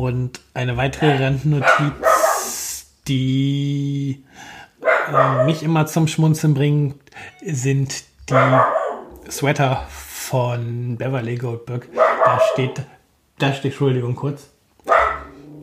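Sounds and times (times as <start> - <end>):
speech: 0.0 - 2.1, 3.1 - 15.0
dog barking at something outside: 1.0 - 2.6, 4.8 - 5.6, 8.3 - 9.2, 11.9 - 12.8, 14.8 - 15.4.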